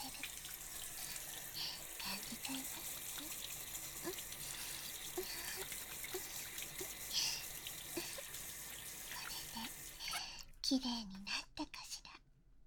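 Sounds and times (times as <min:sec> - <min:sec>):
shower water spraying and splashing, rinsing off soap foam: 0:00.0 - 0:10.1
speech: 0:10.7 - 0:11.8.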